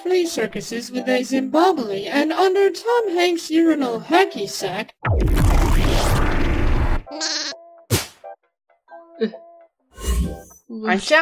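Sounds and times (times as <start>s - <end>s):
speech: 0.0s - 5.6s, 9.2s - 9.4s, 10.7s - 11.2s
loud noisy burst of a cartoon glitter explosion: 5.1s - 7.0s
sheep bleating: 7.1s - 7.6s.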